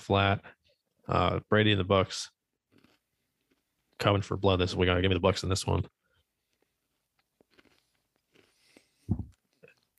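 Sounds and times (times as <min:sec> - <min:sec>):
speech: 0:00.0 - 0:02.4, 0:04.0 - 0:06.0
crunchy bite of a candy bar: 0:07.4 - 0:08.9.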